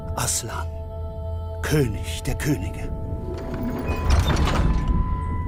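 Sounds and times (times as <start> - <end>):
speech: 0.2 - 0.7, 1.6 - 4.8
heavy door being pushed shut: 3.1 - 5.4.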